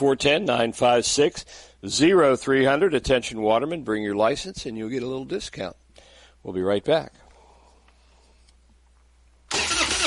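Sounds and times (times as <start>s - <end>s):
speech: 0.0s - 5.8s, 6.4s - 7.2s
truck engine cranking without starting: 9.5s - 10.0s.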